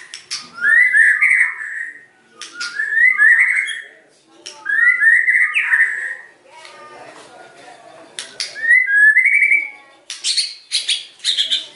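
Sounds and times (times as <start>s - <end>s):
white-rumped shama whistling lure song: 0.3s - 3.9s, 4.7s - 6.3s, 8.5s - 11.7s.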